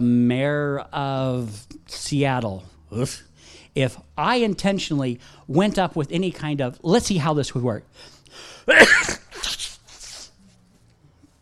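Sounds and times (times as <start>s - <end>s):
speech: 0.0s - 9.6s
soft breathy exhalations: 7.9s - 8.7s
loud sneeze: 8.6s - 10.4s.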